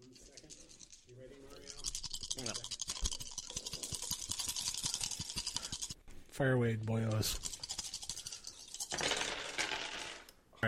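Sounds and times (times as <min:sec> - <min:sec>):
several people rolling six-sided dice: 0:01.6 - 0:06.0, 0:07.3 - 0:10.3
speech: 0:06.4 - 0:07.5.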